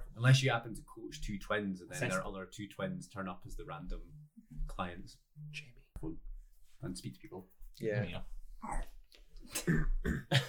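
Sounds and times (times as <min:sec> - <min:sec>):
speech: 0:00.2 - 0:08.9, 0:09.5 - 0:10.4
throaty burp: 0:09.6 - 0:10.4.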